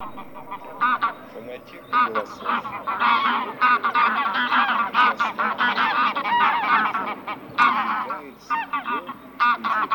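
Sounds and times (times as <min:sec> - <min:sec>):
bean goose honks recorded for a hunting lure device: 0:00.0 - 0:09.9.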